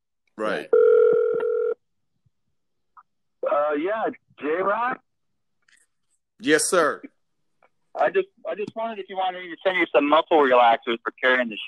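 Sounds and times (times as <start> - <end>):
speech: 0.4 - 1.4, 3.6 - 5.1, 6.4 - 7.2, 8.0 - 11.6
phone call ring tone through a speaker: 0.7 - 1.8.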